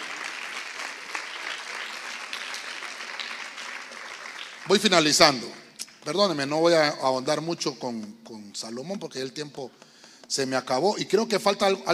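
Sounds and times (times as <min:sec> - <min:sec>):
large crowd applauding loudly: 0:00.0 - 0:06.2
speech: 0:04.7 - 0:11.9.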